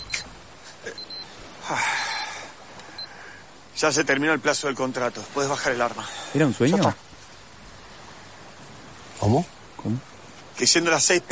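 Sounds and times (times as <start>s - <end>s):
electronic alarm beeping in short bright bursts: 0.0s - 0.3s, 1.0s - 1.3s, 2.0s - 2.2s
speech: 1.7s - 2.0s, 3.8s - 7.1s, 9.2s - 11.2s.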